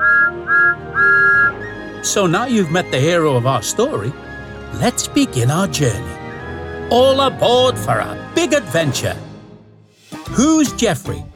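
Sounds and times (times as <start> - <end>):
small steam tank engine whistle toots: 0.0 - 1.8
speech: 2.0 - 6.2, 6.9 - 9.3, 10.3 - 11.3.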